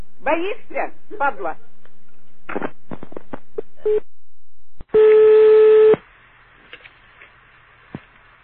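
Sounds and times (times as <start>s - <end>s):
speech: 0.2s - 1.7s, 2.5s - 2.7s, 3.8s - 4.1s
short beeps and clicks: 4.9s - 6.0s
steady telephone tone: 4.9s - 6.0s.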